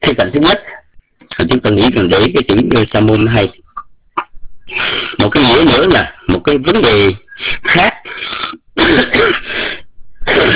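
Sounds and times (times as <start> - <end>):
speech: 0.1 - 0.8, 1.5 - 3.7, 4.7 - 9.8
hoarse person clearing throat: 8.8 - 9.6, 10.2 - 10.5
hoarse person coughing: 8.8 - 10.5.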